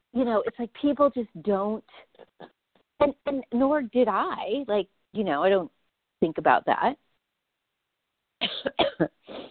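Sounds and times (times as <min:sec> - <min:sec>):
speech: 0:00.2 - 0:07.0, 0:08.6 - 0:09.4
harsh coughs after swallowing wrong: 0:08.4 - 0:09.4.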